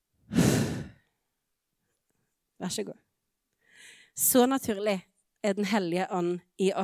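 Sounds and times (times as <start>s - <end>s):
deep breathy exhale: 0.3s - 1.0s
speech: 2.6s - 3.1s, 4.2s - 6.8s.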